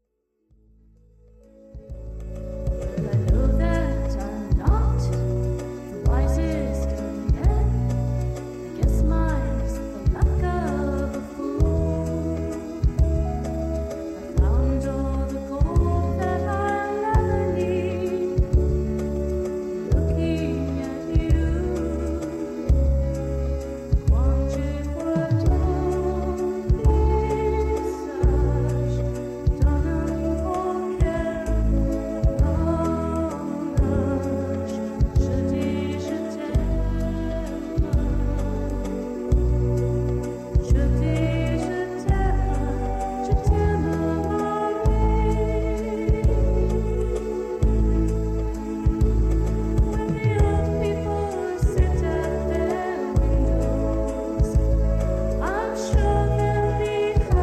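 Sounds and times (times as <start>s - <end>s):
French folk waltz music: 0.7s - 57.4s.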